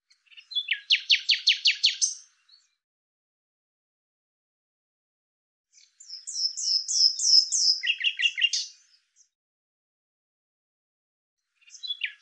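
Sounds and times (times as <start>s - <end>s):
common nightingale song: 0.1s - 2.8s, 5.7s - 9.4s, 11.5s - 12.2s.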